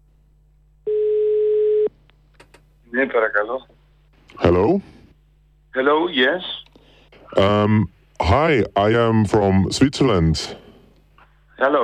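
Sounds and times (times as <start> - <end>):
telephone dial tone on a call: 0.9 - 1.9
speech: 2.9 - 3.8, 4.4 - 5.0, 5.8 - 6.6, 7.3 - 10.6, 11.6 - 11.8.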